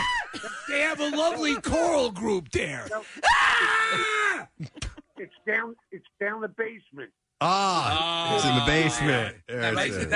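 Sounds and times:
speech: 0.7 - 10.1
group of people screaming: 3.2 - 4.4.

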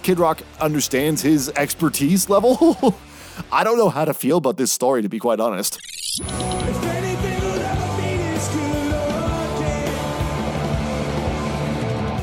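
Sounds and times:
speech: 0.1 - 6.8
laughter: 2.4 - 3.0
rock band playing live in a concert hall: 6.4 - 12.2.

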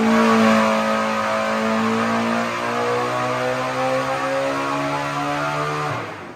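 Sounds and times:
turbocharged V8 engine revving at high RPM: 0.0 - 6.3.

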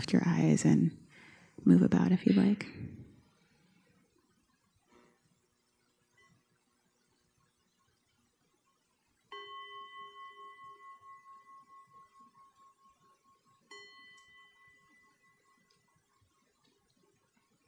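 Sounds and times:
speech: 0.0 - 1.0, 1.6 - 3.0
meditation bell struck to close practice: 9.3 - 16.2.

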